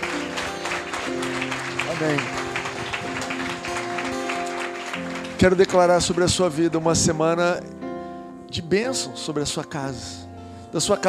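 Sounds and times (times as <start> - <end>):
crowd clapping at a Christian worship service: 0.0 - 7.4
speech: 2.0 - 2.4, 5.4 - 7.8, 8.5 - 11.0.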